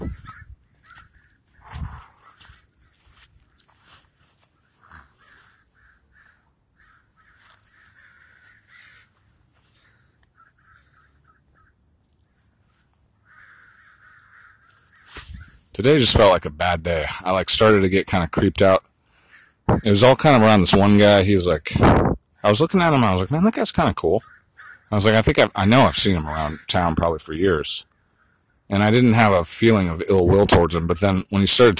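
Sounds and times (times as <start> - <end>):
many crows cawing: 0.0 - 15.7, 18.9 - 20.1, 24.2 - 25.0, 25.8 - 27.1, 27.8 - 28.7
speech: 15.8 - 18.8, 19.8 - 24.3, 24.9 - 27.9, 28.7 - 31.7.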